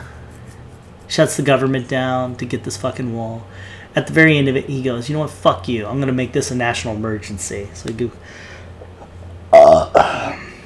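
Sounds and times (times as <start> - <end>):
speech: 1.1 - 8.5
person burping after eating Spam: 9.5 - 10.6.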